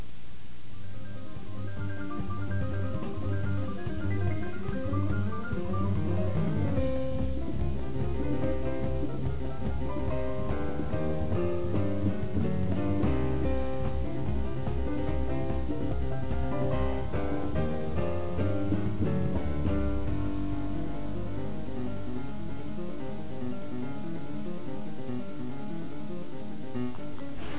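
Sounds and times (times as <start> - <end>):
instrumental musical interlude: 0.8 - 27.5.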